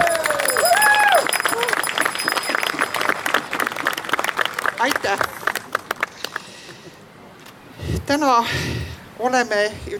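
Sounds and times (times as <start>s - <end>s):
sliding whoops or whistles from a crowd: 0.0s - 1.8s
crowd applause for a newly chosen king: 0.0s - 6.5s
speech: 4.8s - 5.4s, 8.1s - 9.9s.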